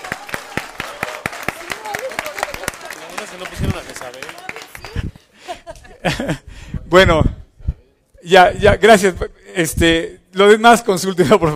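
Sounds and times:
small group applauding: 0.0s - 5.4s
laughter: 1.7s - 6.6s
speech: 3.3s - 5.0s, 6.0s - 7.4s, 8.3s - 11.5s.

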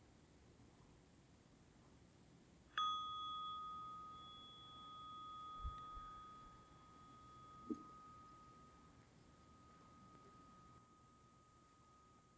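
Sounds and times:
meditation bell struck and ringing: 2.8s - 12.3s.

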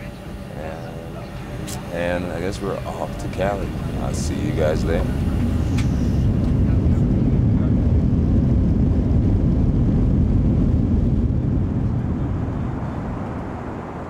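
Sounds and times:
chartered jet airplane engines roaring on a runway in Las Vegas: 0.0s - 14.0s
speech: 1.7s - 5.6s.

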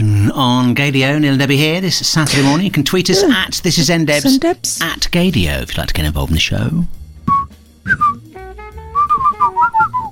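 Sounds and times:
speech: 0.4s - 7.0s, 7.8s - 8.2s
person whistling a short lilting tune: 7.3s - 10.1s.

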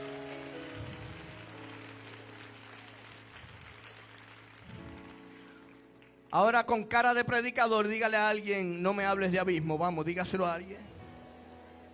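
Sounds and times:
large congregation applauding: 0.0s - 7.2s
speech: 6.3s - 10.9s.

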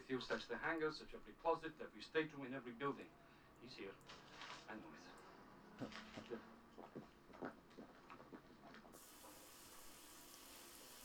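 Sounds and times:
speech: 0.1s - 7.6s
shower spraying water: 9.0s - 11.0s.

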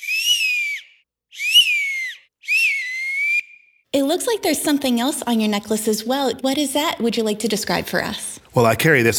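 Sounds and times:
acorn cap whistle blown through hands: 0.0s - 3.8s
speech: 4.0s - 9.1s.

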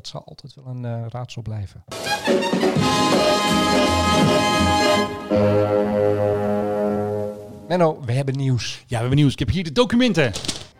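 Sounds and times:
speech: 0.0s - 6.2s, 7.7s - 10.6s
stately brass-heavy fanfare jingle: 1.9s - 7.7s.

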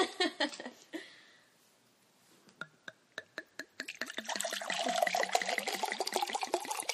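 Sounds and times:
wine glugging out of a bottle into a glass: 3.6s - 6.9s.

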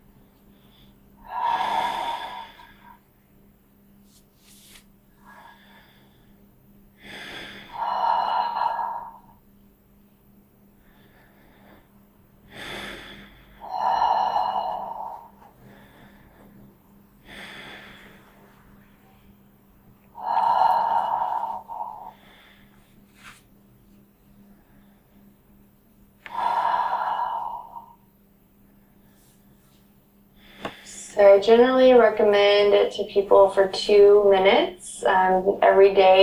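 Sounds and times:
slow breathing in and out through the mouth with a relaxed jaw: 0.4s - 3.0s, 4.4s - 6.4s, 7.0s - 9.4s, 10.8s - 18.9s, 20.1s - 23.5s, 26.2s - 28.1s
speech: 31.2s - 36.2s.

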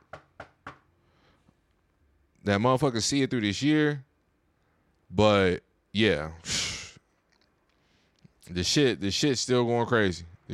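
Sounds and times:
knocking on wood: 0.0s - 0.8s
speech: 2.4s - 4.1s, 5.1s - 6.7s, 8.5s - 10.5s.

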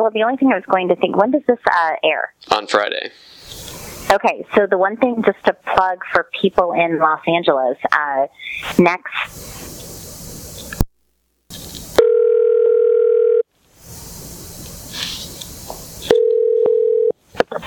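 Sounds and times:
speech: 0.0s - 9.7s
hissy phone line noise: 3.2s - 4.2s, 8.4s - 10.9s, 11.5s - 12.0s, 13.8s - 16.2s
steady electronic phone dial tone: 12.0s - 13.4s, 16.1s - 17.2s.

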